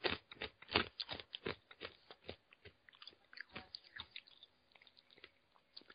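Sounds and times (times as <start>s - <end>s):
crunching a hard sweet being chewed: 0.0s - 5.9s.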